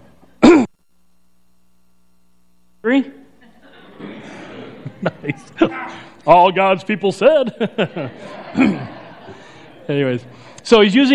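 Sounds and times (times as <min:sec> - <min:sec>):
person clearing throat during a church sermon: 0:00.4 - 0:00.8, 0:05.4 - 0:06.2, 0:08.5 - 0:09.0
speech: 0:02.9 - 0:03.2, 0:05.0 - 0:08.9, 0:09.9 - 0:11.1
laughter: 0:03.4 - 0:10.4.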